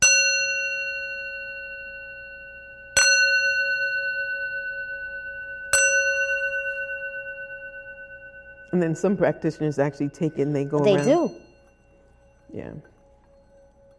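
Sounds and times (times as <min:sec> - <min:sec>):
small brass singing bowl struck and ringing: 0:00.0 - 0:13.9
speech: 0:08.7 - 0:11.4, 0:12.5 - 0:12.9.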